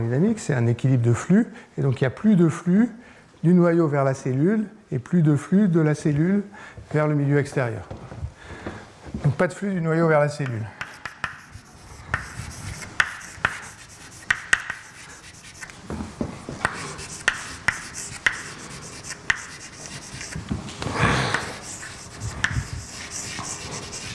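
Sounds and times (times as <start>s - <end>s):
speech: 0.0s - 8.2s, 9.4s - 10.8s
writing on a board during a lecture: 10.4s - 15.8s, 16.5s - 20.6s, 21.2s - 24.1s.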